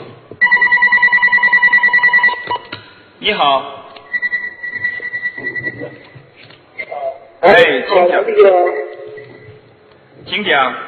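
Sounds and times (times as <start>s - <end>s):
telephone ringing with a loud electronic ringtone of pulsing warbled tones: 0.4s - 2.7s, 4.2s - 5.9s
speech: 3.2s - 3.8s, 7.4s - 8.8s, 10.3s - 10.8s.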